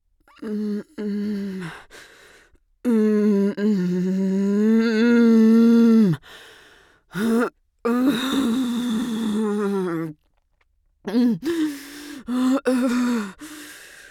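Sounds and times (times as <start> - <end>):
woman giving birth moaning lightly: 0.3 - 1.9, 2.8 - 6.3, 7.1 - 10.2, 11.1 - 13.6.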